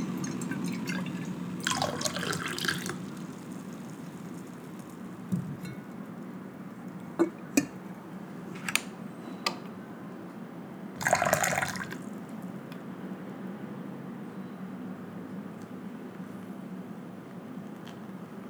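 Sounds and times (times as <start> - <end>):
water pouring for pour-over coffee: 0.0 - 7.8, 11.0 - 12.2
low steady murmur: 0.0 - 18.4.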